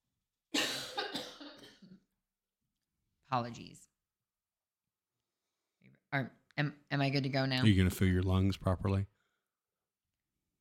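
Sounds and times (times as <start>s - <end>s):
person coughing: 0.6s - 2.1s
speech: 3.3s - 3.9s, 6.1s - 9.1s.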